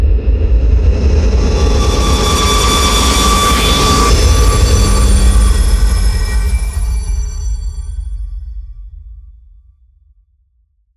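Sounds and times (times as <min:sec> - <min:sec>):
riser: 0:00.2 - 0:08.4
impact hit: 0:00.8 - 0:08.7.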